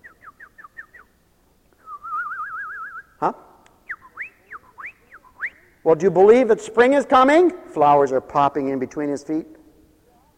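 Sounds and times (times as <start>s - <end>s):
birdsong of descending whistles, warbling trill and rising chirps: 0.0s - 1.3s, 3.8s - 5.8s
speech: 3.2s - 3.4s, 5.8s - 9.6s.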